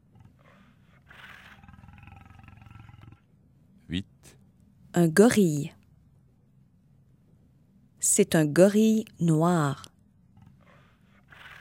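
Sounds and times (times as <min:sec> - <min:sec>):
bear roaring: 0:00.0 - 0:03.3, 0:10.4 - 0:11.5
speech: 0:03.9 - 0:04.4, 0:05.0 - 0:05.8, 0:08.2 - 0:09.9.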